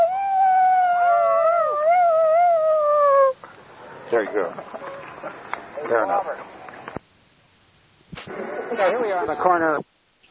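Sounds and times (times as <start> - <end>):
person imitating a wolf howl: 0.0 - 3.4
speech: 4.2 - 6.6, 8.3 - 9.9.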